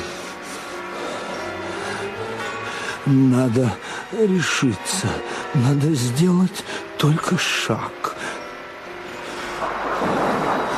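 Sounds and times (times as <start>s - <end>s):
speech: 3.0s - 8.4s
steady storm noise: 9.5s - 10.7s
low rolling thunder during a thunderstorm: 9.6s - 10.7s.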